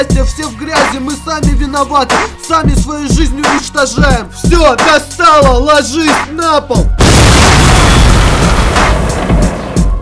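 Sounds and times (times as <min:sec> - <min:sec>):
speech: 0:00.0 - 0:08.0
loud explosion with deep rumbling: 0:07.0 - 0:09.9
sharp explosion blasts: 0:07.0 - 0:09.9.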